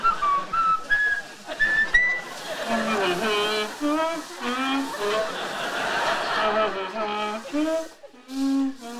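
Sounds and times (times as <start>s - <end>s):
man whistling a bouncy tune in a kitchen: 0.0s - 3.0s
laughter: 0.2s - 8.3s.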